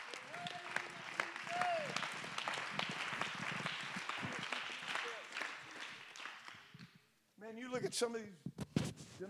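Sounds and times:
audience clapping hands in applause: 0.0s - 7.0s
speech: 7.5s - 8.5s.

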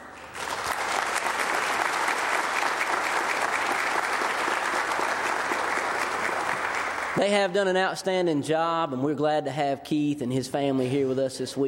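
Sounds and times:
large group applauding in a room: 0.0s - 7.3s
speech: 7.2s - 11.6s.

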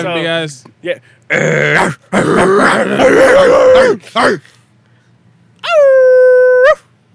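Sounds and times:
speech: 0.0s - 4.6s
person imitating a dog yelp: 1.3s - 4.4s, 5.6s - 6.9s.

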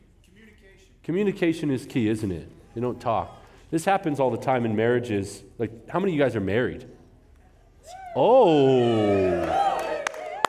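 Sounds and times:
speech: 0.8s - 7.0s, 7.8s - 9.6s
audience cheering and whooping: 7.8s - 10.4s
scattered claps: 9.4s - 10.4s.

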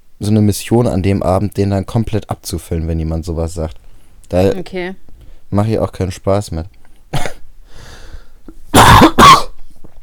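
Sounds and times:
speech: 0.2s - 7.3s
person coughing: 7.1s - 7.4s, 8.7s - 9.6s.

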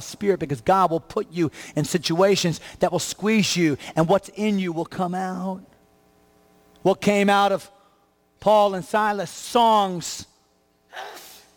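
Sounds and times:
speech: 0.0s - 5.7s, 6.8s - 7.8s, 8.4s - 10.3s, 10.9s - 11.2s
person sneezing in an audience during a sermon: 10.9s - 11.5s.

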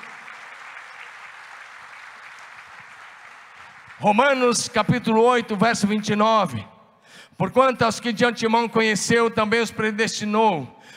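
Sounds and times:
audience applauding: 0.0s - 4.9s
speech: 4.0s - 6.7s, 7.4s - 10.9s.

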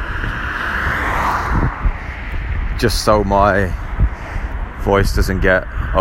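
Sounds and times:
car driving past with a broad rushing whoosh: 0.0s - 3.0s
speech: 2.8s - 3.8s, 4.8s - 5.9s.

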